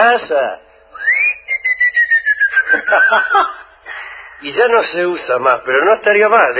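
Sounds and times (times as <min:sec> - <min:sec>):
speech: 0:00.0 - 0:01.0, 0:02.7 - 0:03.6, 0:04.4 - 0:06.5
person whistling to call someone: 0:00.9 - 0:03.3
laughter: 0:02.6 - 0:03.7.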